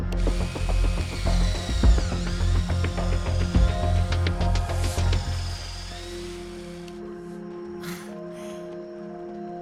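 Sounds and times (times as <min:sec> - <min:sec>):
power drill boring a burr hole in a skull: 0:00.1 - 0:07.2.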